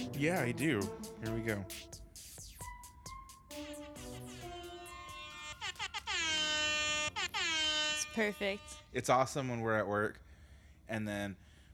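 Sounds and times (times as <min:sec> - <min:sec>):
speech: 0:00.2 - 0:02.0, 0:08.2 - 0:10.2, 0:10.9 - 0:11.4
loud blaring distorted air horn blasts: 0:03.8 - 0:09.1.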